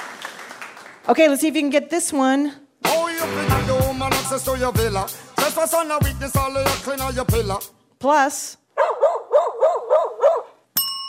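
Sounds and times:
speech: 1.0 - 3.5, 4.3 - 8.9
dog barking: 8.8 - 10.6.

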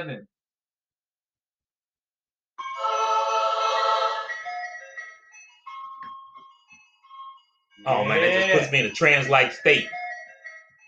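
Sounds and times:
speech: 0.0 - 0.4, 7.8 - 10.0
bright tinkling ice cream truck jingle: 2.6 - 10.8.

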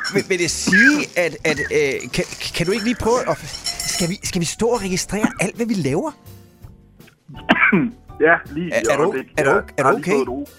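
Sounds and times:
speech: 0.1 - 6.3, 7.3 - 10.5
harsh raspy cough: 7.3 - 8.0.

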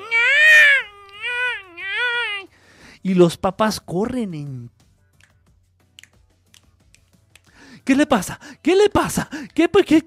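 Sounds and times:
newborn baby crying and wailing: 0.0 - 2.5
speech: 3.0 - 4.8, 7.9 - 10.0.

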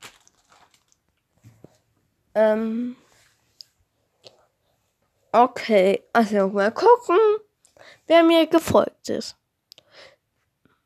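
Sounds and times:
empty plastic bag crinkling and rustling: 0.0 - 1.3
speech: 2.4 - 3.0, 5.3 - 9.4.

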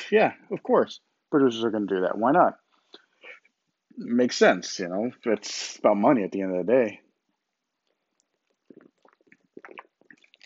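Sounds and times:
speech: 0.1 - 2.6, 4.0 - 7.0
person chugging water: 7.8 - 10.4.

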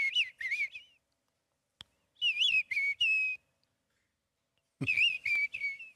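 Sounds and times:
person whistling in imitation of mistle thrush song: 0.0 - 1.0, 2.2 - 3.5, 4.8 - 5.9.

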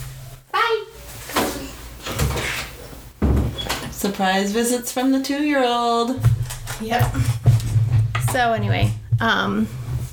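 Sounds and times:
door bumping and rattling as it is pushed: 1.0 - 4.2
speech: 4.0 - 7.4, 8.3 - 9.8.

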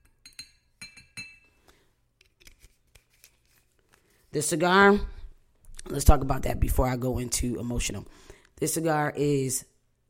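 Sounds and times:
glass clinking with ringing tone: 0.0 - 1.6
speech: 4.4 - 5.2, 5.9 - 10.0.

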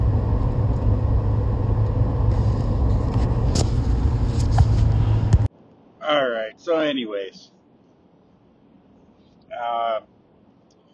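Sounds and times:
truck engine rumble driving behind slow traffic: 0.0 - 5.5
road noise from inside the truck cab: 0.0 - 7.1
speech: 6.9 - 7.6, 9.6 - 10.1.

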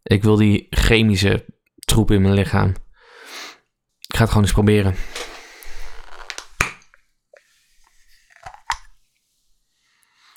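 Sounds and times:
speech: 0.1 - 2.8, 4.2 - 5.3
screw cap twisted off a drink bottle: 8.3 - 8.9.

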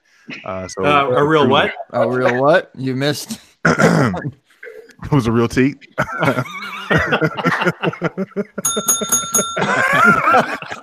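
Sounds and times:
speech: 0.2 - 4.4, 5.0 - 10.8
people laughing: 6.0 - 10.8
bright novelty bell dinging rapidly: 8.6 - 10.3.

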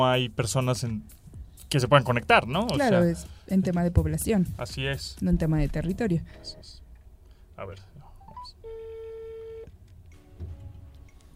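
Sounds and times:
speech: 0.0 - 6.8, 7.6 - 8.6
steady electronic phone tone: 8.2 - 9.7
telephone dialing beeps: 8.2 - 9.7.

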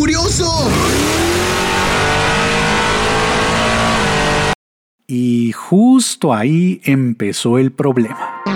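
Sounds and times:
car engine revving and accelerating: 0.0 - 4.6
speech: 5.1 - 8.4.

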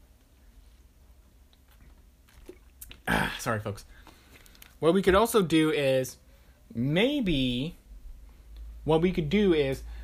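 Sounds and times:
low hum: 0.0 - 10.0
person sipping water: 1.6 - 3.4
speech: 3.1 - 4.1, 4.8 - 7.8, 8.8 - 9.9.

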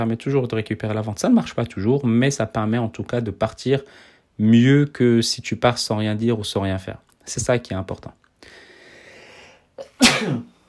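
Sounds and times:
speech: 0.0 - 8.6, 9.8 - 10.5
person sneezing: 9.8 - 10.6.

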